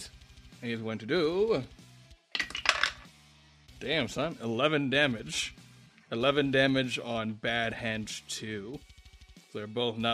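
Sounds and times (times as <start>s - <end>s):
speech: 0.6s - 1.8s, 3.8s - 8.9s, 9.5s - 10.1s
dice rolling across a hard tabletop in a tabletop game: 2.4s - 3.1s.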